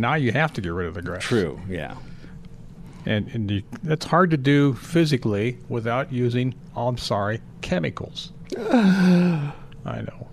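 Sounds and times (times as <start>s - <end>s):
speech: 0.0s - 2.1s, 3.0s - 10.3s
loud voiced gasp sliding downward in pitch: 8.5s - 9.7s.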